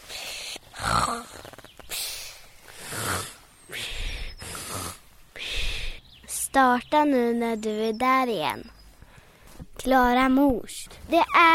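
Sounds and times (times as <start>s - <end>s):
person imitating snoring with snorts and breathy rasps: 0.7s - 1.6s, 2.7s - 3.4s, 4.4s - 5.0s
speech: 1.1s - 1.6s, 6.6s - 8.8s, 9.8s - 11.5s.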